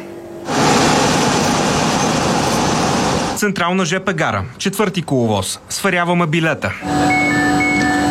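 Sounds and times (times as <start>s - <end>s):
rumbling hiss inside a new passenger railcar train travelling from Sofia to Gorna Banya: 0.0s - 3.4s
speech: 3.4s - 7.6s.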